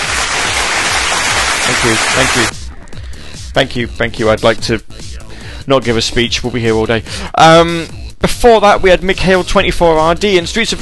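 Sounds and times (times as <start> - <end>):
small crowd applauding: 0.0 - 2.5
speech: 1.8 - 2.6, 3.6 - 10.8.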